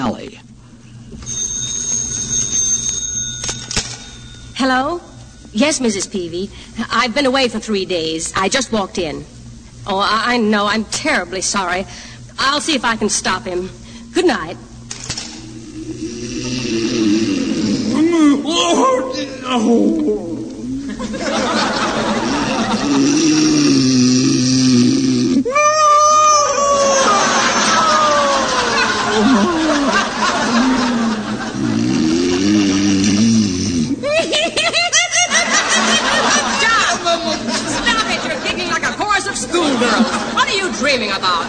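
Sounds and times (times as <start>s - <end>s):
speech: 0.1s - 1.4s, 4.6s - 14.7s, 18.4s - 20.3s, 21.0s - 21.8s, 39.9s - 41.4s
man snoring loudly and theatrically in bed: 15.6s - 18.1s, 22.1s - 25.5s, 30.4s - 34.0s
laughter: 17.7s - 23.7s, 26.6s - 33.3s, 33.9s - 41.4s.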